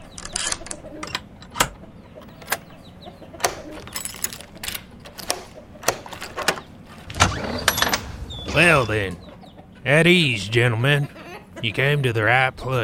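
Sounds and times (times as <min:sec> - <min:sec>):
agitated chickens clucking: 0:00.0 - 0:12.8
low steady rumble: 0:07.0 - 0:09.7
speech: 0:08.6 - 0:09.2, 0:09.8 - 0:12.8.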